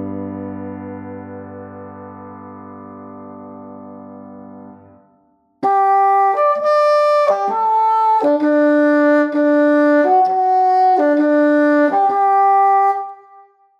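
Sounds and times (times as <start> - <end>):
bassoon in G major: 5.7 - 13.5.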